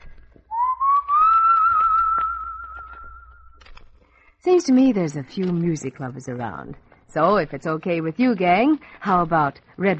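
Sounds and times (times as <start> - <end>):
faint noise: 0.0 - 9.9
person whistling a long rising note: 0.5 - 3.6
speech: 4.4 - 9.9.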